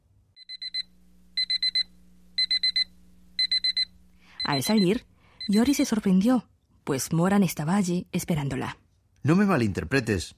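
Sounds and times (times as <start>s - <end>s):
faint low hum: 0.0s - 10.3s
alarm clock rapid electronic beeps: 0.4s - 6.2s
speech: 4.5s - 10.3s.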